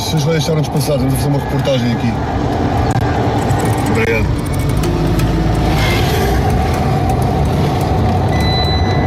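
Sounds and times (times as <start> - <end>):
speech: 0.1 - 3.3, 4.0 - 4.6
car driving slowly onto Albarquel beach in Arrábida over rough ground: 2.8 - 8.9.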